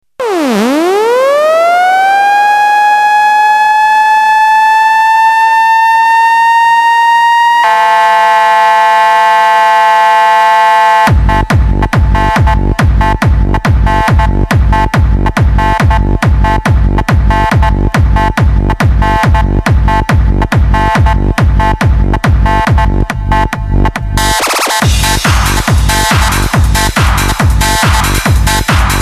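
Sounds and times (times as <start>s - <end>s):
trance alarm: 0.2s - 23.6s, 24.2s - 29.0s.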